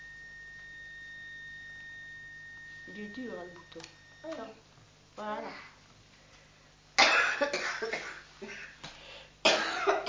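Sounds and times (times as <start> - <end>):
speech: 3.0 - 5.7
elderly woman coughing in a harsh fit: 7.0 - 8.8, 9.4 - 10.0.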